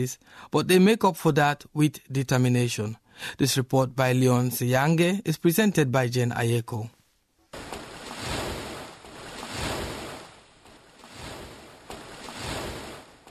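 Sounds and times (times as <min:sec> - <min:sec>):
speech: 0:00.0 - 0:07.0
waves washing onto a sandy lake shore: 0:07.5 - 0:13.2.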